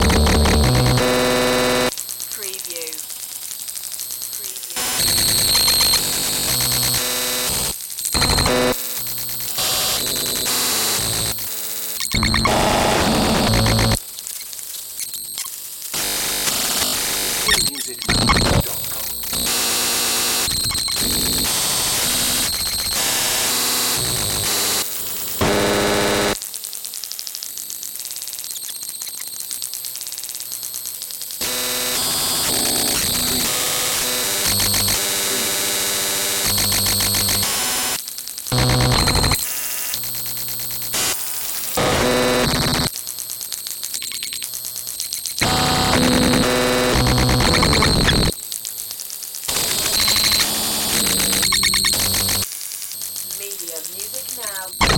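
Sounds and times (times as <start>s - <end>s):
computer glitch static: 0.0s - 26.4s, 28.0s - 54.9s.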